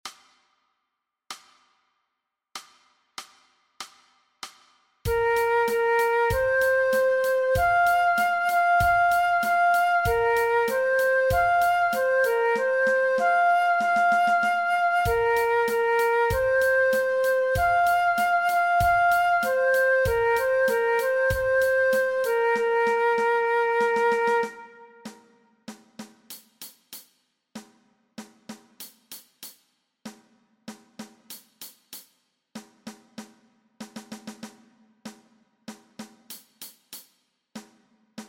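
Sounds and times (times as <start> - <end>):
transverse flute playing an alternate play-along track: 5.1 - 25.3.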